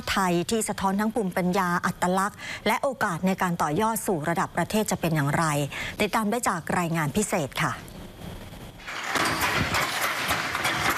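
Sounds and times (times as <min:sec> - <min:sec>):
speech: 0:00.2 - 0:07.9
wooden handloom beating threads while weaving Thai cloth: 0:08.9 - 0:10.9.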